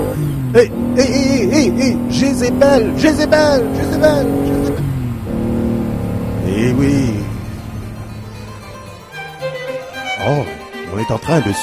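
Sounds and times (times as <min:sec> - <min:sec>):
motorcycle engine humming and revving: 0:00.0 - 0:10.4
speech: 0:00.5 - 0:04.8, 0:06.6 - 0:07.3, 0:10.2 - 0:11.6.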